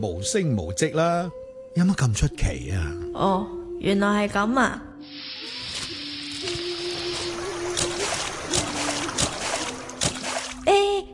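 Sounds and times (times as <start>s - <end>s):
speech: 0.0s - 5.3s
steady trickle of running water: 5.1s - 10.7s
footsteps splashing through a shallow stream: 5.8s - 10.7s.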